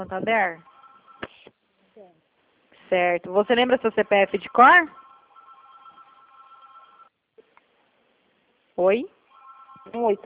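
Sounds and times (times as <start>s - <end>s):
speech: 0.0s - 0.7s, 2.9s - 5.0s, 8.8s - 9.2s, 9.8s - 10.2s
telephone ringing with a warbling electronic tone through a phone line: 0.6s - 1.4s, 4.0s - 7.1s, 9.3s - 10.2s.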